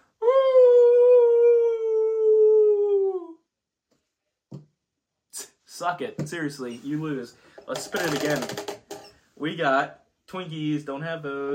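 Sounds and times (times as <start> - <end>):
person imitating a wolf howl: 0.2 - 3.4
speech: 5.8 - 8.8, 9.4 - 11.5.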